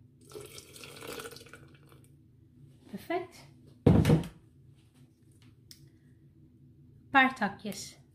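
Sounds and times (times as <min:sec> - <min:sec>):
water pouring into a carafe while making detox water: 0:00.2 - 0:02.1
speech: 0:03.0 - 0:03.6, 0:07.2 - 0:08.0.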